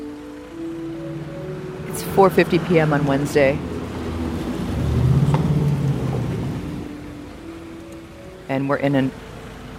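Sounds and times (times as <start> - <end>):
cars idling in highway traffic jam: 0.0 - 9.7
faint rising hum: 0.0 - 9.7
speech: 2.0 - 3.7, 8.6 - 9.2.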